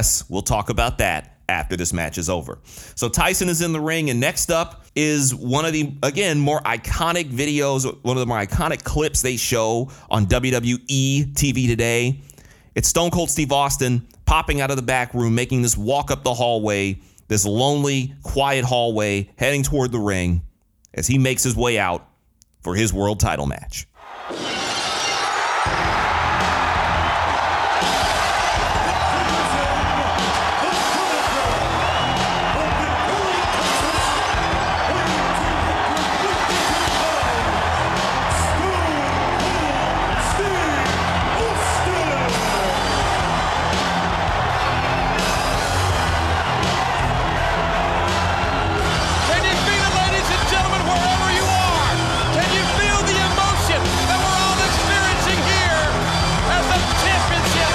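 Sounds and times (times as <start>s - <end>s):
speech: 0.0s - 24.5s
huge arena crowd roaring and cheering: 24.0s - 57.7s
glass shattering: 24.4s - 25.5s.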